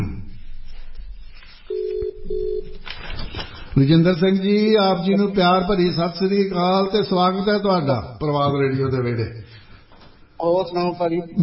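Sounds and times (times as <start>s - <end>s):
telephone ringback tone of a call being placed: 1.7s - 2.8s
speech: 3.8s - 9.6s, 10.4s - 11.4s.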